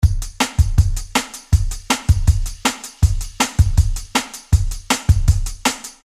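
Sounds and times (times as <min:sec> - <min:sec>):
breakbeat drums: 0:00.0 - 0:06.0.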